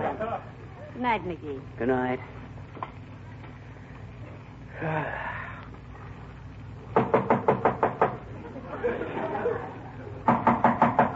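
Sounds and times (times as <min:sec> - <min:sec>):
laughter: 0:00.0 - 0:00.5, 0:08.3 - 0:10.3
speech: 0:01.0 - 0:02.4, 0:04.8 - 0:05.3
breathy wheezing vocal sounds: 0:04.7 - 0:05.7
rapid loud knocking on a door: 0:07.0 - 0:08.2, 0:10.3 - 0:11.1.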